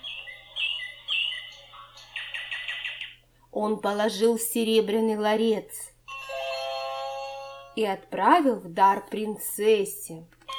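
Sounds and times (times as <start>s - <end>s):
nightingale singing: 0.0s - 3.2s
speech: 3.6s - 5.9s, 7.8s - 10.4s.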